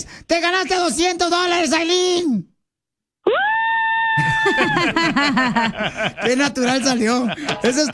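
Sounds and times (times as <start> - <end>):
speech: 0.3 - 2.5, 3.2 - 3.6, 4.2 - 7.9
woman screaming excitedly: 3.2 - 5.0
laughter: 4.2 - 7.9.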